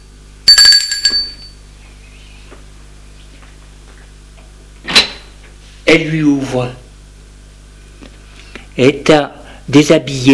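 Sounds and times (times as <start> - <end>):
doorbell ringing at a home: 0.5 - 1.6
speech: 5.9 - 6.8, 8.8 - 10.3.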